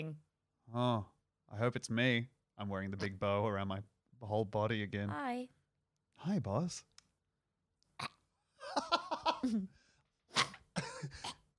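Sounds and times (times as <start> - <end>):
speech: 0.0 - 5.6, 6.2 - 6.9, 8.7 - 9.8
laughter: 8.6 - 9.7
person clearing throat: 10.3 - 11.5.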